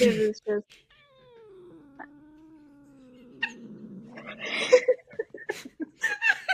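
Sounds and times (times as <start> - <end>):
speech: 0.0 - 0.9
female cat grumbling murmur: 0.9 - 5.1
female cat brief chuckling sounds: 2.9 - 5.9.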